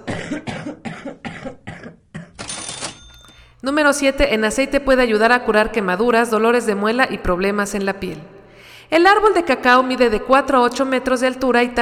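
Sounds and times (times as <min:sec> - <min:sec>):
rapid fit of harsh coughing: 0:00.0 - 0:02.5
speech: 0:03.6 - 0:08.3, 0:08.9 - 0:11.7.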